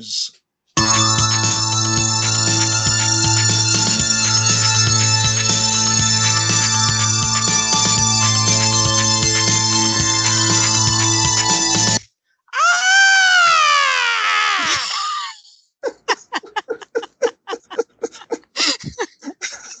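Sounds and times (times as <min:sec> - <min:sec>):
speech: 0:00.0 - 0:00.4
dense music for a fake slasher film trailer: 0:00.8 - 0:12.0
person screaming: 0:12.6 - 0:15.4
giggle-like vocal bursts: 0:15.8 - 0:19.7.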